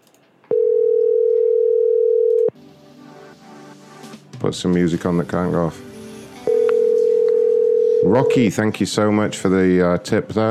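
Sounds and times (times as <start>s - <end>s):
telephone ringback tone on an unanswered call: 0.5s - 2.5s, 6.5s - 8.4s
speech: 4.4s - 5.9s, 8.0s - 10.5s.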